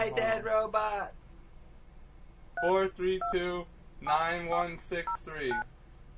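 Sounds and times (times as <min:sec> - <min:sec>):
speech: 0:00.0 - 0:01.2, 0:02.6 - 0:05.7
voice imitating phone touch-tone beeps: 0:02.6 - 0:03.4.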